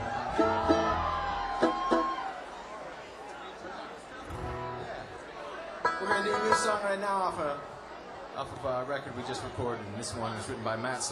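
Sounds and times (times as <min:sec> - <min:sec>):
festival crowd voices yelling and whooping: 0:00.0 - 0:02.6
large outdoor festival crowd at a concert chattering: 0:00.0 - 0:10.5
speech: 0:06.6 - 0:07.7, 0:08.4 - 0:11.0.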